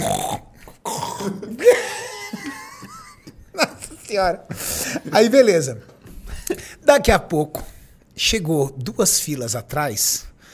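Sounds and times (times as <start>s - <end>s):
person imitating gurgling burp-like throat noises: 0.0s - 2.3s
laughter: 1.5s - 5.4s
speech: 4.1s - 5.9s, 6.9s - 10.3s.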